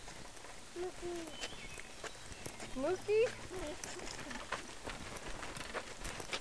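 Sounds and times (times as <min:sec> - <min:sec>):
steady hiss of outdoor noise: 0:00.0 - 0:06.3
speech: 0:00.8 - 0:01.6, 0:02.8 - 0:04.6
small bird chirping: 0:00.8 - 0:04.5.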